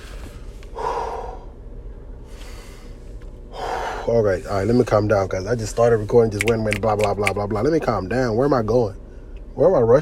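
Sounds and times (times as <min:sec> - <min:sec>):
deep breaths: 0:00.0 - 0:01.6, 0:02.2 - 0:04.5
speech: 0:04.1 - 0:09.0, 0:09.6 - 0:10.0.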